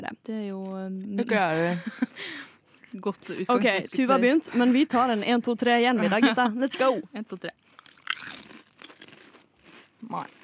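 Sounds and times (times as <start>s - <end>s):
speech: 0.0s - 7.7s, 10.0s - 10.4s
laughter: 6.0s - 7.1s
several people chewing potato chips: 7.6s - 10.4s.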